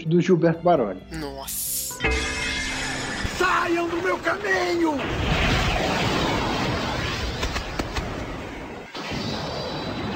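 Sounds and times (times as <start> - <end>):
speech: 0.0 - 2.2, 3.4 - 5.5
sharp crackling bursts of energy blast: 2.9 - 10.1
anime style energy blast attack explosion roaring: 3.0 - 10.1
rumbling galactic explosion: 3.3 - 10.1.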